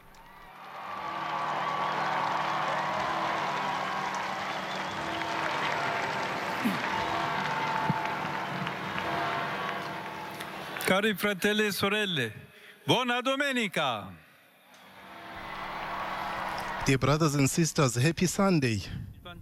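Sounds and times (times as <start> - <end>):
large crowd applauding and cheering at the Sunday liturgy: 0.0 - 11.1, 14.8 - 17.6
speech: 6.6 - 6.9, 10.9 - 14.2, 16.8 - 19.4.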